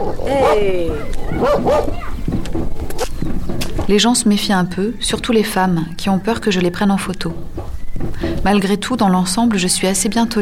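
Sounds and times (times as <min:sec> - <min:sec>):
busy noise: 0:00.0 - 0:10.4
speech: 0:00.1 - 0:02.1, 0:03.9 - 0:07.5, 0:08.4 - 0:10.4
dog barking aggressively: 0:01.3 - 0:02.2.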